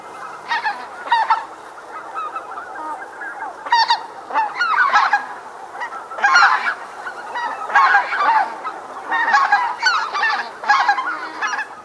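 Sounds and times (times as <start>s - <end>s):
flock of greater white-fronted geese honking: 0.1s - 11.8s.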